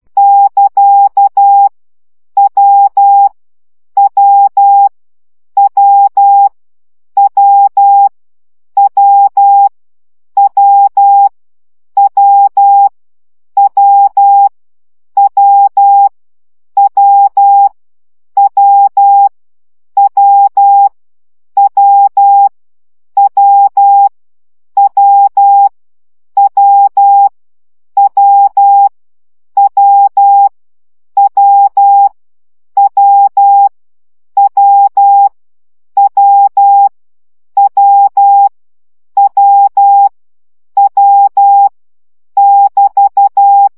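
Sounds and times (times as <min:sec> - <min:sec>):
Morse code CW practice at 10 baud: 0:00.2 - 0:01.7, 0:02.4 - 0:03.3, 0:04.0 - 0:04.9, 0:05.6 - 0:06.5, 0:07.2 - 0:08.1, 0:08.8 - 0:09.7, 0:10.4 - 0:11.3, 0:12.0 - 0:12.9, 0:13.6 - 0:14.5, 0:15.2 - 0:16.1, 0:16.8 - 0:17.7, 0:18.4 - 0:19.3, 0:20.0 - 0:20.9, 0:21.6 - 0:22.5, 0:23.2 - 0:24.1, 0:24.8 - 0:25.7, 0:26.4 - 0:27.3, 0:28.0 - 0:28.9, 0:29.6 - 0:30.5, 0:31.2 - 0:32.1, 0:32.8 - 0:33.7, 0:34.4 - 0:35.4, 0:36.0 - 0:36.9, 0:37.6 - 0:38.5, 0:39.2 - 0:40.1, 0:40.8 - 0:41.7, 0:42.4 - 0:43.7.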